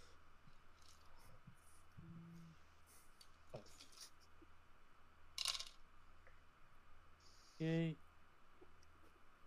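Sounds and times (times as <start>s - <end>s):
low steady hum: 0.0s - 9.4s
five dice rolled on a table for a tabletop game damage roll: 5.4s - 5.8s
speech: 7.6s - 8.0s.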